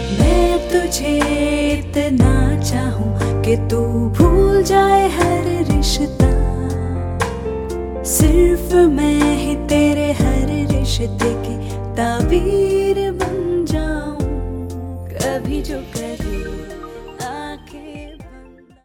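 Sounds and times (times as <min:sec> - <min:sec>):
woman singing a love song in Hindi: 0:00.1 - 0:18.8.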